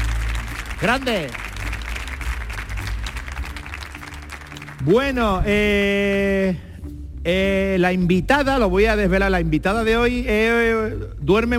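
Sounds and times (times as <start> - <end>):
audience applause with many hands clapping: 0.0 - 5.0
speech: 0.8 - 1.5, 4.8 - 11.5.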